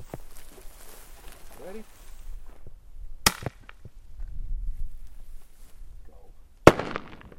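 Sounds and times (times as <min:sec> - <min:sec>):
faint outdoor rustling: 0:00.0 - 0:07.3
speech: 0:01.6 - 0:02.0
shotgun firing a cracker shell: 0:03.2 - 0:03.7, 0:06.6 - 0:07.3.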